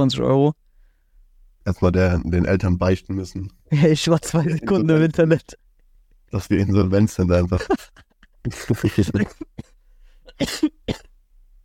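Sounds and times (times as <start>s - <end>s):
speech: 0.0s - 0.6s, 1.6s - 5.6s, 6.3s - 9.7s, 10.4s - 11.0s
laughter: 4.2s - 5.0s, 7.5s - 9.5s
person coughing: 8.5s - 11.2s.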